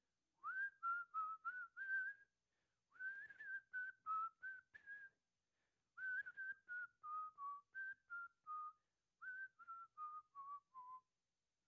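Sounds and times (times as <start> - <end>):
audience whistling a tune together: 0.4 - 2.3, 2.9 - 5.2, 6.0 - 11.1.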